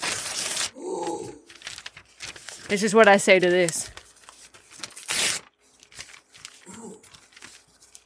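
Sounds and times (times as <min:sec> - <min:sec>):
paper list being crumpled and ripped: 0:00.0 - 0:00.7, 0:01.5 - 0:08.0
speech: 0:02.7 - 0:03.9.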